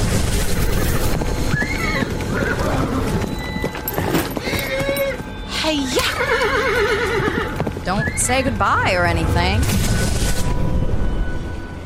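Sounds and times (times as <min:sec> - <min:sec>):
busy outdoor background: 0:00.0 - 0:11.8
female horse galloping with hoof clip-clops: 0:00.4 - 0:05.4, 0:06.4 - 0:08.7
speech: 0:07.9 - 0:10.1.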